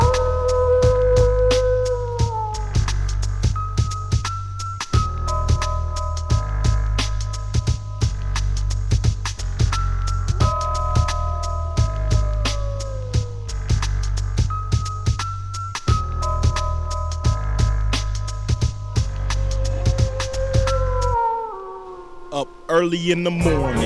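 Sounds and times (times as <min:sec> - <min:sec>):
wavering howls at the moon: 0:00.0 - 0:03.2, 0:10.4 - 0:14.0, 0:19.0 - 0:23.8
steady low rumble: 0:00.0 - 0:04.4, 0:05.0 - 0:15.2, 0:15.9 - 0:21.2
speech: 0:22.8 - 0:23.8.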